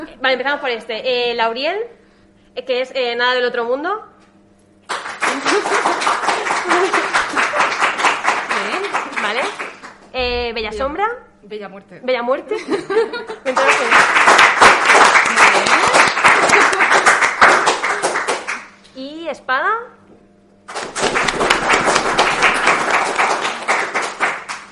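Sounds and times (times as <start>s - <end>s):
speech: 0.0s - 2.0s, 2.6s - 4.1s, 9.3s - 14.4s, 19.0s - 20.0s
audience applause as a vote: 4.9s - 10.1s, 13.5s - 18.7s, 20.7s - 24.7s
scattered laughs: 5.2s - 8.8s, 12.5s - 13.9s, 15.3s - 17.2s.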